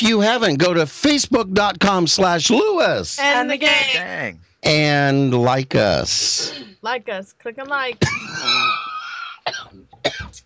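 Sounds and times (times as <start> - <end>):
speech: 0.0 - 8.9, 9.5 - 10.4
sharp coughs: 6.3 - 6.8, 8.0 - 10.4
raspy drawn-out throat sound: 8.1 - 10.4.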